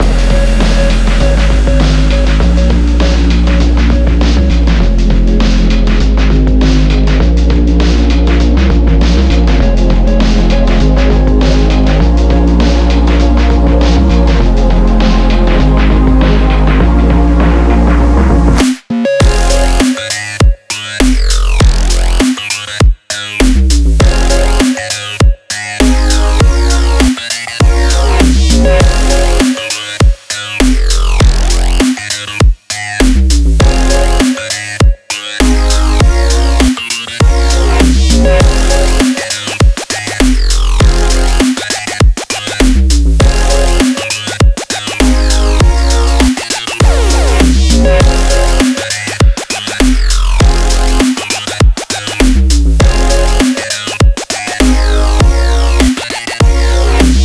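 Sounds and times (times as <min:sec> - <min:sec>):
glitch hop music: 0:00.0 - 0:57.2.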